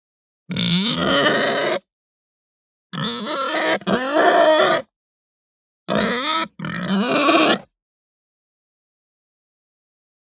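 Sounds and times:
Hampshire pig squealing: 0.5s - 1.9s, 3.0s - 4.9s, 5.9s - 7.7s.

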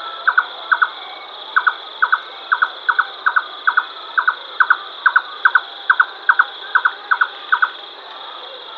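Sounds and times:
Red-necked nightjar giving paired hollow knocks: 0.3s - 1.0s, 1.6s - 7.8s.

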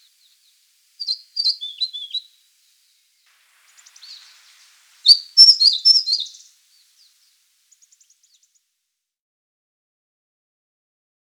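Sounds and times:
white-spectacled warbler song: 0.0s - 8.7s.

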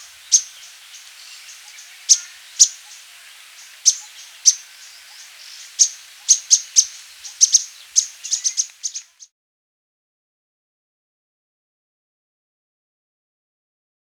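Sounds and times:
Thick-billed flowerpecker calling: 0.0s - 9.3s.

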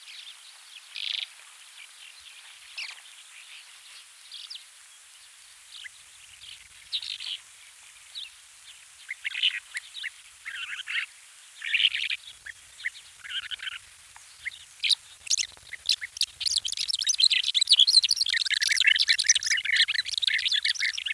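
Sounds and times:
faint steady hiss: 0.0s - 21.1s
lesser short-toed lark song: 14.4s - 21.1s.

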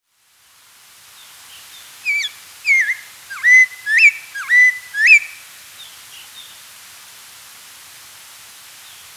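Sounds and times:
Spotted laughingthrush singing clear whistles: 2.0s - 5.4s.

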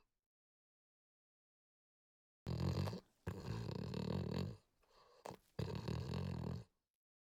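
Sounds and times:
French Bulldog snorting and snuffling: 2.5s - 6.7s.

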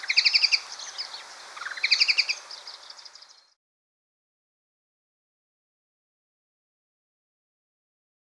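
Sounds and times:
white-throated babbler rattling chatter: 0.0s - 3.4s.

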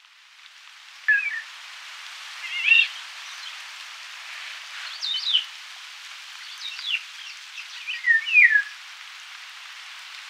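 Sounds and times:
steady hiss: 0.0s - 10.2s
Eurasian golden oriole fluty whistled song: 1.1s - 1.4s, 7.6s - 8.8s.

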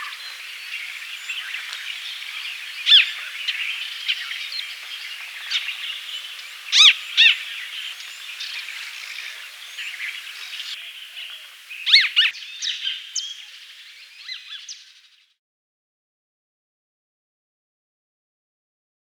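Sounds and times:
Crested treeswift giving sharp ringing arched call notes: 0.0s - 14.9s.

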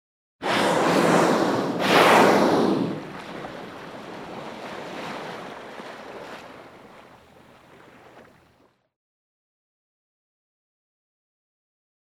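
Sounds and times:
humpback whale exhale and inhale through the blowhole: 0.4s - 8.5s
water and surf-like background hiss: 0.4s - 8.6s.

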